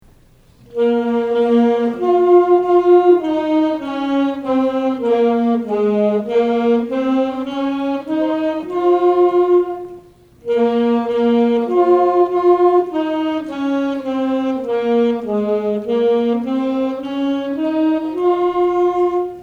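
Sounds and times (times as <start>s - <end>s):
saxophones: 0.6s - 19.4s.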